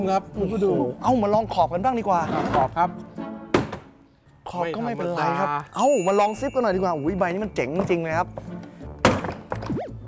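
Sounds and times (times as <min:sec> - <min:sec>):
speech: 0:00.0 - 0:03.1, 0:04.5 - 0:08.6
suitcase being struck to test its lock: 0:03.5 - 0:03.9, 0:07.8 - 0:09.7.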